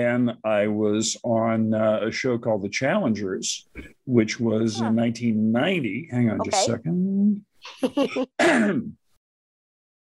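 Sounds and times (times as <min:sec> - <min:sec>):
speech: 0:00.0 - 0:09.0
person coughing into a microphone: 0:08.2 - 0:09.0.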